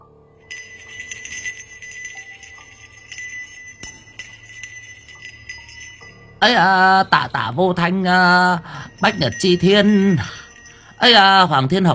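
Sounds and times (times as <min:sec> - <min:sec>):
small hand bell shaken by a ritual priest at a graveside ceremony: 0:00.5 - 0:07.1, 0:08.6 - 0:11.9
speech: 0:06.4 - 0:10.4, 0:11.0 - 0:11.9.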